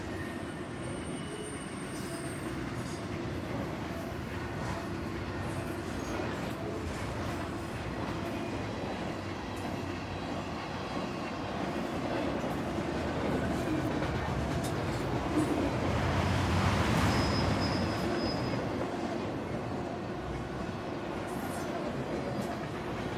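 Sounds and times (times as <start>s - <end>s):
freight train wheel squeals: 0.0s - 12.2s, 13.3s - 19.3s
long freight train rolling past at full speed in the Columbia Gorge: 0.0s - 23.1s.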